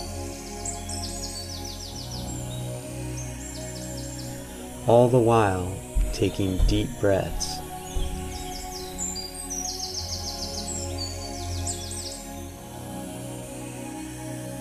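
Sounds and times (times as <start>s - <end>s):
birds chirping and trilling in the woods: 0.0s - 13.0s
speech: 4.9s - 7.5s.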